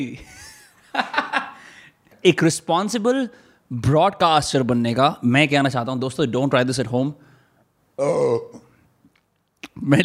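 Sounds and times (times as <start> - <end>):
speech: 0.0 - 1.2, 2.2 - 7.3, 8.0 - 8.6, 9.8 - 10.0
laughter: 0.2 - 1.6
loud throaty burp: 8.0 - 8.7.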